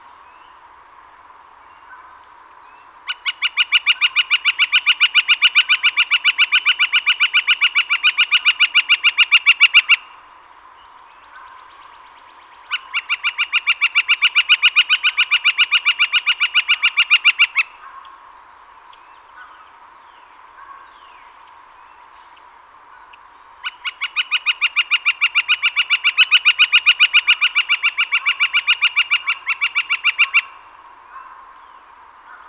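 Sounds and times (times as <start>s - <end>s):
Northern flicker: 3.0s - 10.3s, 12.6s - 18.2s, 20.6s - 32.4s.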